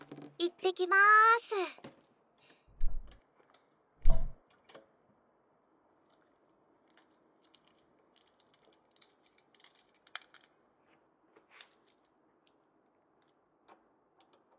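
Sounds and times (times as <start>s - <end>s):
speech: 0.6s - 1.9s
door closing with a solid thud: 4.0s - 4.4s.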